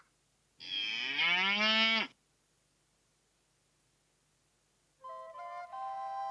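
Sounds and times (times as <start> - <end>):
single long cow moo with rich rising harmonics: 0.6 - 2.2.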